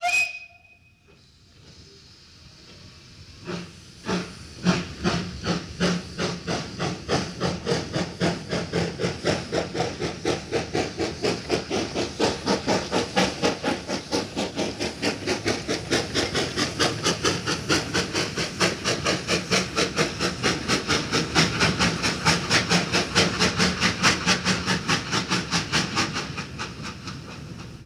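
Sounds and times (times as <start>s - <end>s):
steam train whistle: 0.0s - 1.2s
steam train chugging: 0.0s - 27.8s.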